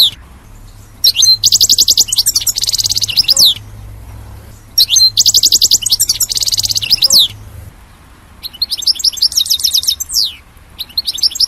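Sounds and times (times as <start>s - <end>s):
soft low background hum: 0.0s - 8.0s
European goldfinch song: 0.0s - 11.4s.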